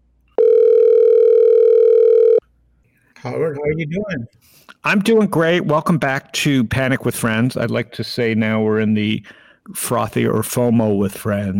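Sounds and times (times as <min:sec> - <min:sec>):
outgoing telephone call ringing tone: 0:00.4 - 0:02.4
speech: 0:03.2 - 0:11.5.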